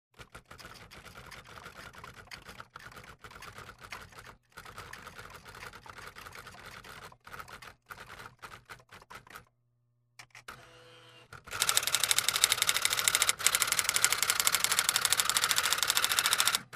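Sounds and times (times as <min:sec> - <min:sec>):
automatic sewing machine running: 0:11.4 - 0:16.7.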